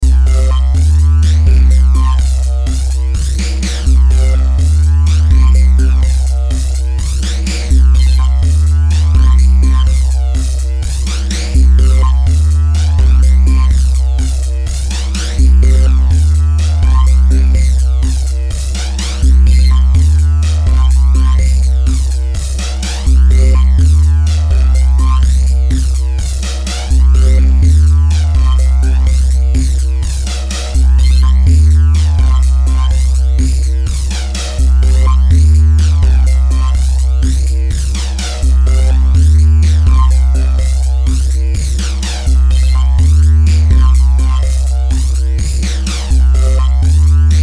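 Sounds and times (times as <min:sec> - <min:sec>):
big bass: 0:00.0 - 0:47.4
industrial synth beat loop with distortion and flanger: 0:00.0 - 0:47.4.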